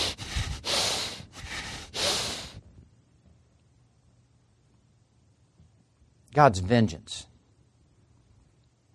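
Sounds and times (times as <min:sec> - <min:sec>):
person snorting heavy breaths through the nostrils: 0:00.0 - 0:02.6
speech: 0:06.4 - 0:07.3.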